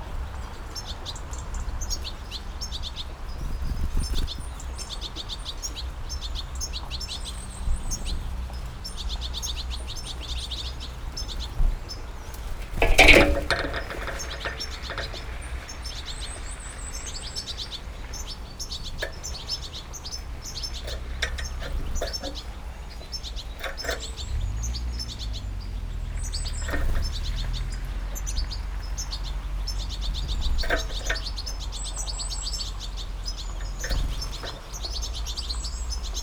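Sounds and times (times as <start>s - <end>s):
birds at an amplified bird feeder in Burbage Valley UK: 0.0s - 36.2s.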